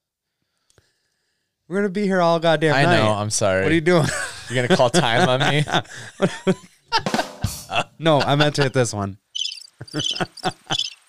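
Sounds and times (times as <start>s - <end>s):
speech: 1.7s - 9.2s, 9.8s - 10.8s
laughter: 2.8s - 9.1s, 9.8s - 11.0s
crickets chirping: 9.3s - 11.0s.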